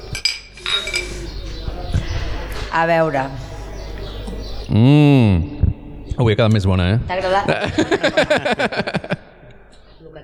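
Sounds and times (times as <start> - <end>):
glasses clinking together in a toast: 0.0 - 1.8
low room noise: 0.0 - 10.2
voices murmuring: 0.0 - 10.2
speech: 2.8 - 3.5, 4.7 - 5.5, 6.2 - 9.1
laughter: 7.1 - 9.7.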